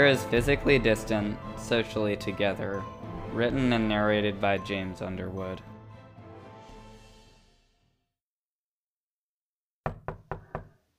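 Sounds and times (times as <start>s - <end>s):
speech: 0.0s - 5.7s
firm knocking on a door: 9.8s - 10.8s.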